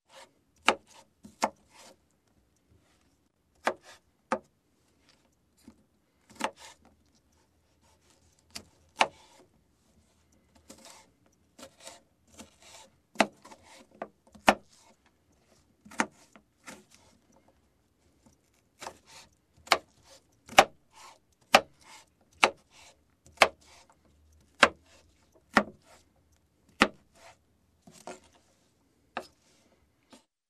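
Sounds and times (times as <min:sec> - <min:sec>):
cutting vegetables: 0:00.1 - 0:02.0, 0:06.3 - 0:06.9, 0:07.7 - 0:09.5, 0:10.6 - 0:17.3, 0:18.2 - 0:26.0, 0:26.7 - 0:28.4.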